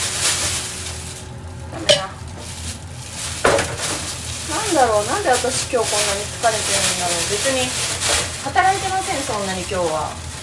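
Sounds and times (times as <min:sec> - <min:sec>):
dishes clattering in a sink while being washed: 0:01.7 - 0:02.5, 0:03.4 - 0:04.1
crockery knocking together: 0:01.8 - 0:02.2
speech: 0:01.8 - 0:02.2, 0:04.8 - 0:10.3.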